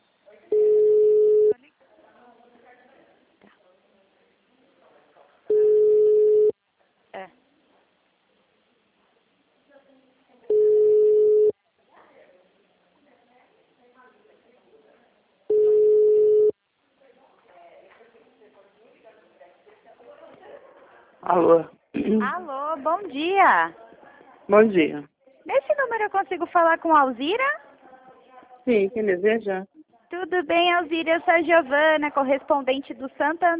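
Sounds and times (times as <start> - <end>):
faint noise: 0.0 - 33.5
telephone call tones while a call is being placed: 0.5 - 1.6, 5.5 - 6.6, 10.5 - 11.5, 15.5 - 16.6
speech: 21.3 - 23.8, 24.5 - 25.1, 25.9 - 27.6, 28.7 - 33.5.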